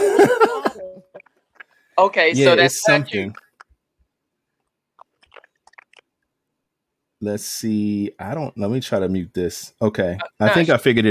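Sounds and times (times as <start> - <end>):
laughter: 0.0 - 0.9
speech: 2.0 - 3.4, 7.2 - 11.1
chewing on hard plastic Lego bricks: 5.0 - 6.1.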